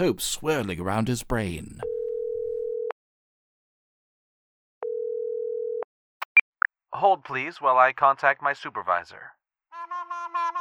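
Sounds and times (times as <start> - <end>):
speech: 0.0 - 1.9, 6.9 - 9.4
telephone ringback tone: 1.8 - 2.9, 4.8 - 5.8.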